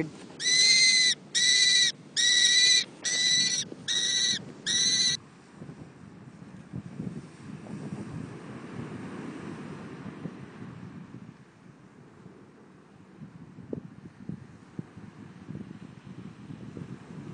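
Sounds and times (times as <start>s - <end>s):
speech: 0.0s - 0.5s
gusty wind: 0.0s - 17.3s
falconry bird for pest bird abatement giving shrill cries: 0.4s - 5.2s.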